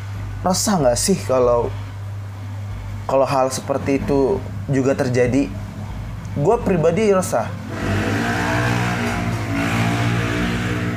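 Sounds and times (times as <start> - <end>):
speech: 0.4 - 1.9, 3.1 - 5.6, 6.4 - 7.8
motorcycle engine revving: 7.6 - 10.9.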